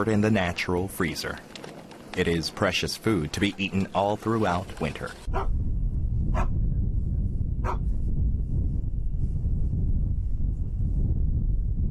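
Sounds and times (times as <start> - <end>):
speech: 0.0 - 1.6, 2.2 - 5.5
steady heavy rumble of outdoor noise: 0.0 - 11.8
dog barking: 5.3 - 5.5, 6.3 - 6.6, 7.6 - 7.8.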